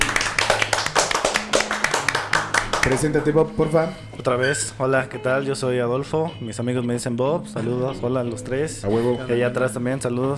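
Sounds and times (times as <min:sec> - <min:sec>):
small group applauding with hand clapping: 0:00.0 - 0:03.5
speech: 0:02.8 - 0:10.3.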